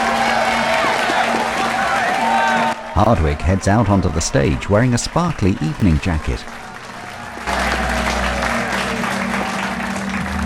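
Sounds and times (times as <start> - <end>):
audience at a police gala applauding: 0.0 - 10.4
speech: 3.0 - 6.6.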